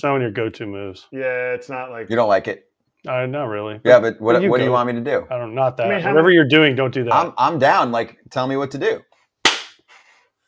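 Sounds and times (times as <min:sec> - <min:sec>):
speech: 0:00.0 - 0:09.1
hands slapping together: 0:09.4 - 0:10.0.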